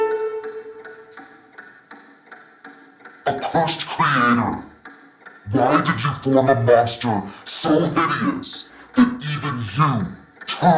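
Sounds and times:
low sustained musical drone: 0:00.0 - 0:01.2
clock ticking: 0:00.0 - 0:10.7
speech: 0:03.3 - 0:04.7, 0:05.5 - 0:09.1, 0:09.8 - 0:10.7.

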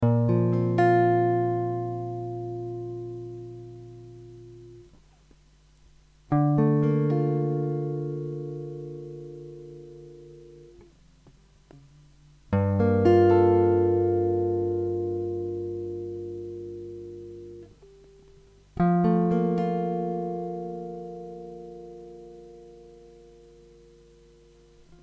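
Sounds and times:
guitar chords: 0:00.0 - 0:05.5, 0:06.2 - 0:25.0.

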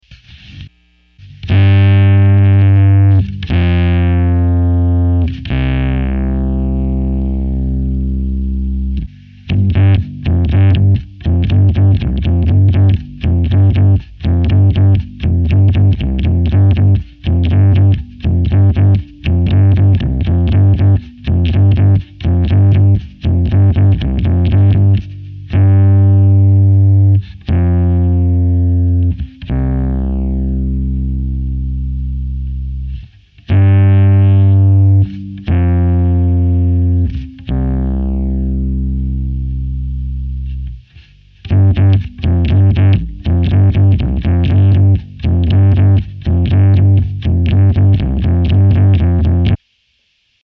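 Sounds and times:
distorted bass: 0:00.0 - 0:50.4.

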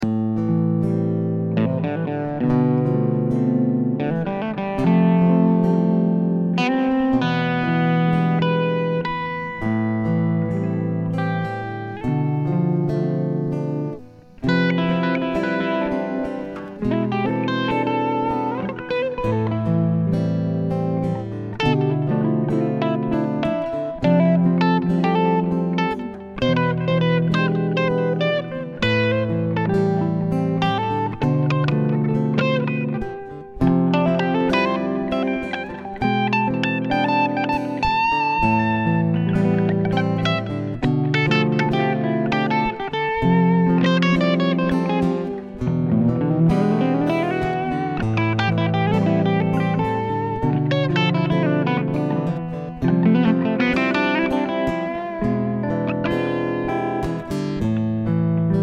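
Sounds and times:
sad chords solo: 0:00.0 - 0:58.6.

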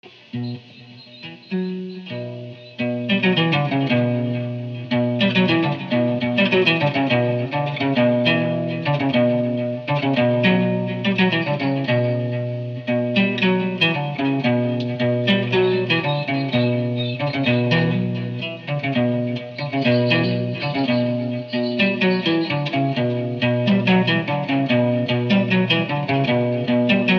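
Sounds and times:
clean guitar practice loop with reverb: 0:00.0 - 0:27.1.

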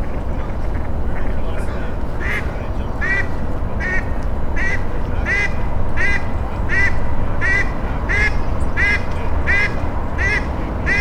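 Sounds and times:
low rumbling background noise: 0:00.0 - 0:10.9
duck quacking: 0:02.2 - 0:10.9.

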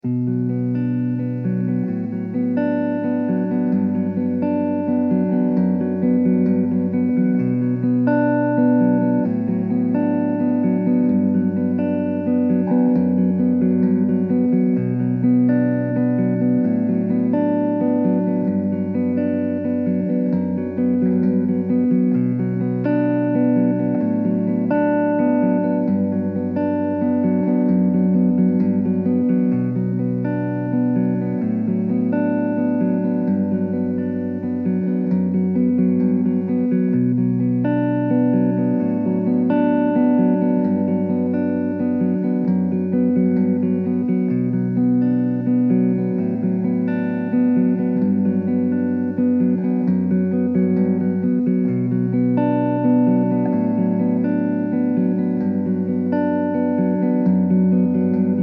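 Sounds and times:
electric guitar arpeggio in B minor: 0:00.0 - 0:58.4.

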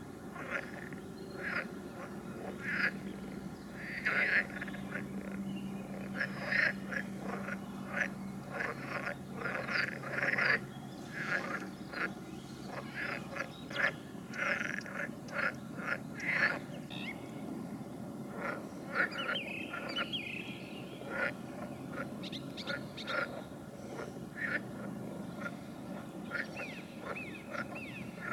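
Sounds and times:
low steady hum: 0:00.0 - 0:28.3
frog chorus of rasping calls: 0:00.2 - 0:17.6, 0:18.2 - 0:28.3.

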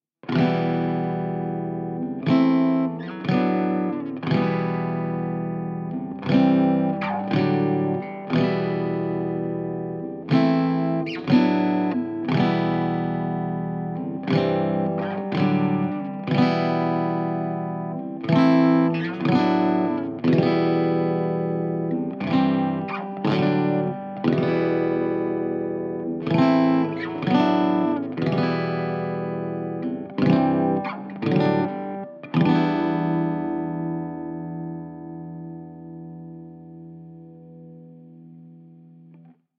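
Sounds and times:
electric guitar rock motif in E minor at 120 BPM: 0:00.2 - 0:39.3.

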